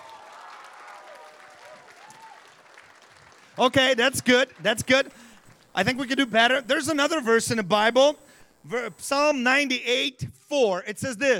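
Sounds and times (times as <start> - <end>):
large church audience of children and parents applauding: 0.0 - 6.2
speech: 3.6 - 5.2, 5.8 - 11.3.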